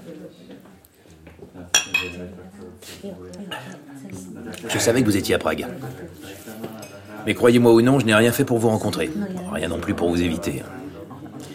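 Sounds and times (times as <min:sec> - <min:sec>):
low murmuring voices: 0:00.0 - 0:11.5
glasses clinking in a toast: 0:01.7 - 0:02.2
speech: 0:02.2 - 0:06.6, 0:07.2 - 0:10.8.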